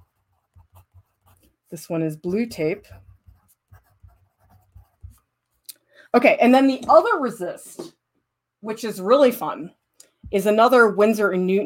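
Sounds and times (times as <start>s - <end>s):
pen writing labels on paper for art resist samples: 0.0s - 5.3s
speech: 1.7s - 3.1s, 6.1s - 8.0s, 8.6s - 11.6s.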